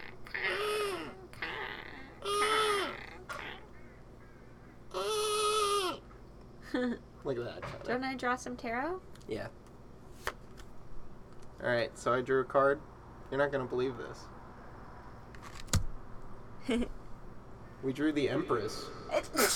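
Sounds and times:
voice imitating a harsh croaking bird call: 0.0s - 6.1s
faint hum: 0.0s - 19.5s
speech: 6.7s - 9.6s, 11.6s - 14.4s, 16.7s - 16.9s, 17.8s - 19.5s.

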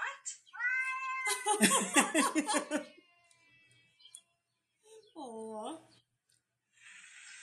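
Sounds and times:
cat meowing and yowling: 0.6s - 1.4s
laughter: 1.3s - 3.0s
cat hissing: 6.8s - 7.4s.

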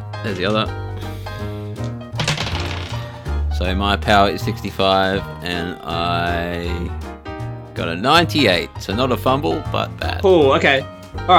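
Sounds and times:
speech: 0.2s - 0.8s, 3.6s - 7.1s, 7.8s - 11.3s
two dice rolled across a table for a power roll in a game: 1.8s - 3.2s.

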